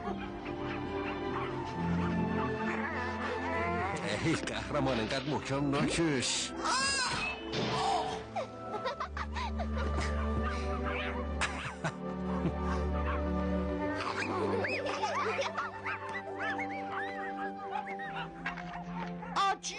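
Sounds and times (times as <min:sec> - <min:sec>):
teething puppies yipping and whimpering: 0:00.0 - 0:04.0, 0:10.0 - 0:11.2, 0:14.0 - 0:19.4
sustained tonal backdrop: 0:00.0 - 0:19.7
speech: 0:04.2 - 0:06.8
laughter: 0:08.3 - 0:13.2, 0:13.8 - 0:18.8.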